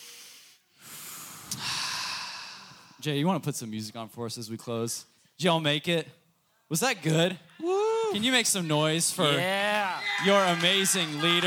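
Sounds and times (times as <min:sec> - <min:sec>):
group of people drawing a deep breath together: 0:00.0 - 0:03.0
speech: 0:03.0 - 0:11.4.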